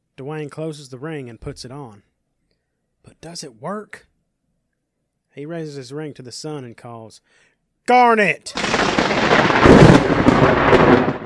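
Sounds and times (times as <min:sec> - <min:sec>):
speech: 0:00.2 - 0:02.1, 0:03.0 - 0:04.1, 0:05.3 - 0:11.1
lightning strike with thunder crack rumbling: 0:08.6 - 0:11.2.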